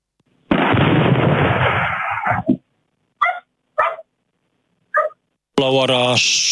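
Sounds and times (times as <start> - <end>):
loud explosion of an object striking the ground: 0.5 - 2.4
dog barking: 2.2 - 2.5, 3.2 - 4.1, 4.9 - 5.2
speech: 5.6 - 6.5.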